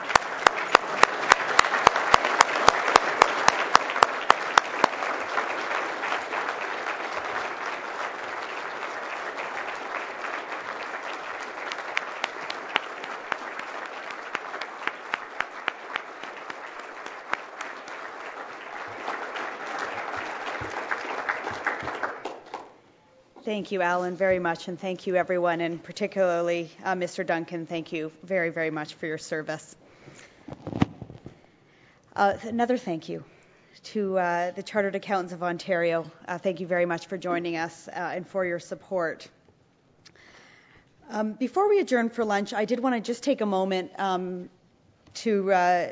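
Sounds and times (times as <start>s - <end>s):
large standing audience applause: 0.0s - 22.8s
speech: 23.5s - 29.8s, 32.2s - 39.4s, 41.2s - 44.6s, 45.2s - 45.8s.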